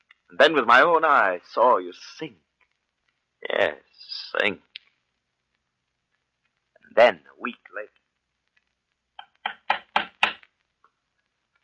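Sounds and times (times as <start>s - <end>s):
speech: 0.3s - 2.4s, 3.4s - 4.7s, 7.0s - 8.0s
knocking on a door: 9.4s - 10.4s.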